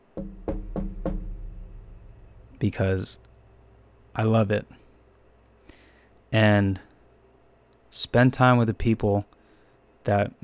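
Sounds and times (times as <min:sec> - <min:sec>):
knuckle raps on a wooden surface: 0:00.1 - 0:01.7
speech: 0:02.6 - 0:03.3, 0:04.2 - 0:04.8, 0:06.3 - 0:06.9, 0:07.9 - 0:09.4, 0:10.0 - 0:10.4.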